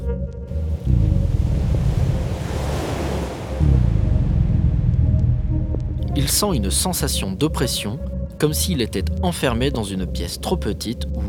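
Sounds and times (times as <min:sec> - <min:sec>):
deep rumble: 0:00.0 - 0:11.2
floodwater rushing in underground tunnels: 0:00.5 - 0:06.0
speech: 0:06.3 - 0:11.2.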